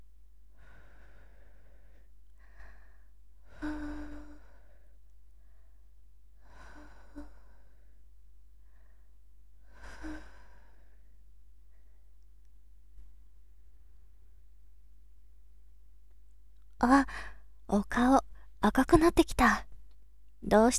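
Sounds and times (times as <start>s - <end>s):
speech: 16.8s - 19.7s, 20.4s - 20.7s
gentle blowing into a listener's ear: 16.8s - 19.8s.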